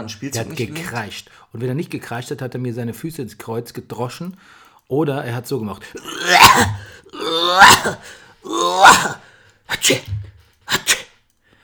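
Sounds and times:
speech: 0:00.0 - 0:10.9
person imitating the barking croup cough of a child: 0:06.0 - 0:11.1.

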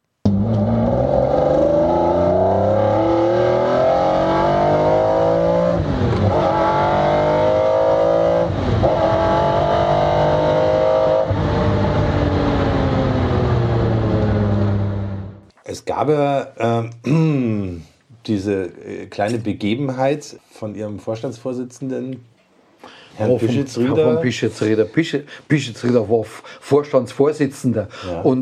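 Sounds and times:
sports car engine revving hard on a test drive: 0:00.2 - 0:15.4
speech: 0:16.0 - 0:16.9, 0:18.4 - 0:28.3.

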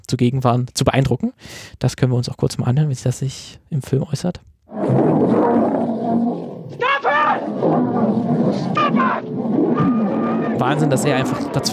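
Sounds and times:
speech: 0:00.1 - 0:05.8, 0:10.6 - 0:11.7
male lions brawling with roars and snarls: 0:04.7 - 0:11.7.

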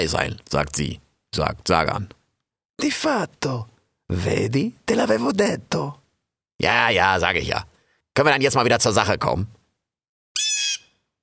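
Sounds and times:
speech: 0:00.0 - 0:02.2, 0:02.8 - 0:06.0, 0:06.6 - 0:09.6
large splendidly feathered bird squawking: 0:10.4 - 0:11.0.

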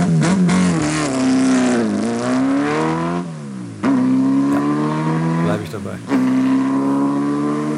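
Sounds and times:
904 Carrera GTS racing sports car engine revving loudly: 0:00.0 - 0:07.7.

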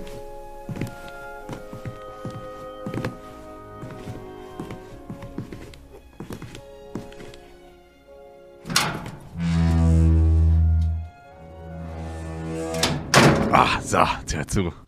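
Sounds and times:
door shutting: 0:08.6 - 0:11.1, 0:11.8 - 0:13.6
low hum: 0:08.8 - 0:13.1
speech: 0:13.9 - 0:14.8.

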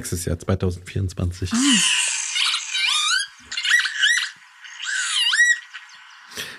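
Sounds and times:
speech: 0:00.0 - 0:02.0
northern lapwings calling pee-wit: 0:01.5 - 0:06.5.

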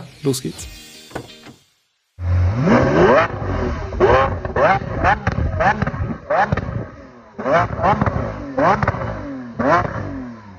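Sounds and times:
speech: 0:00.2 - 0:01.3
car engine revving through stock exhaust: 0:02.2 - 0:10.5.

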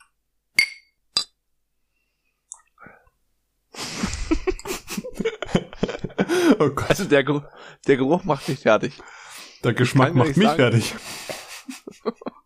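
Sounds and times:
glasses of beer clinking in a toast: 0:00.6 - 0:01.4
laughter: 0:03.8 - 0:07.1, 0:09.7 - 0:12.4
speech: 0:06.6 - 0:11.4.

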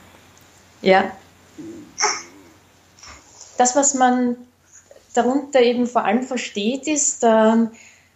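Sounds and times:
speech: 0:00.8 - 0:02.1, 0:03.6 - 0:04.5, 0:05.2 - 0:07.9
baby babbling: 0:01.6 - 0:02.5.

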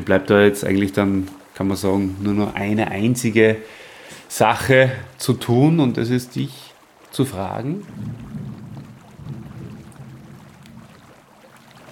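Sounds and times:
speech: 0:00.0 - 0:08.5
thunder rumbling: 0:07.8 - 0:11.9.

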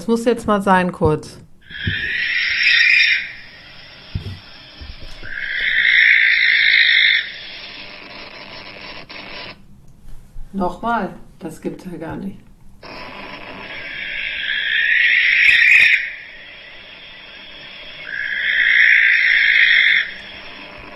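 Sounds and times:
speech: 0:00.0 - 0:02.4, 0:10.6 - 0:12.5
harsh drawn-out owl screeches: 0:01.6 - 0:08.5, 0:12.8 - 0:20.9.

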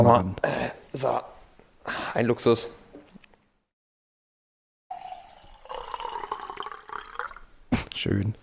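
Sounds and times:
speech: 0:00.0 - 0:02.8, 0:08.0 - 0:08.4
water poured from a filter jug into a glass: 0:04.9 - 0:07.5.

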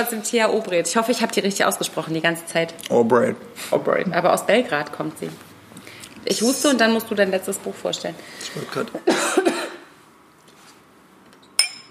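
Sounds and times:
speech: 0:00.0 - 0:05.5, 0:06.2 - 0:09.6
faint room ambience: 0:00.0 - 0:11.8
glasses clinking in a toast: 0:11.6 - 0:11.8.

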